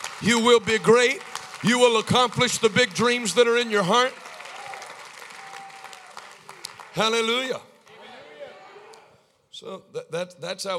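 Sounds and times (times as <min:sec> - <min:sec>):
crowd clapping: 0:00.0 - 0:08.2
speech: 0:00.2 - 0:04.2, 0:07.0 - 0:07.7, 0:09.6 - 0:10.7.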